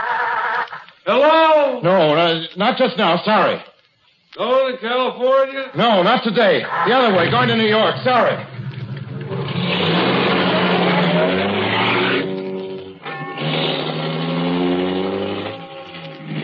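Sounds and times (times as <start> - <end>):
speech: 1.1 - 3.7, 4.4 - 8.5
car engine accelerating back onto road: 7.2 - 16.4.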